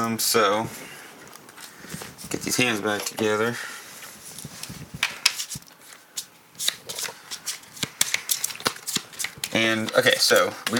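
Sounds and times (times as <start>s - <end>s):
speech: 0.0s - 1.0s, 1.9s - 3.8s, 9.6s - 10.7s
deck of ability playing cards being shuffled in a card game: 4.4s - 10.7s.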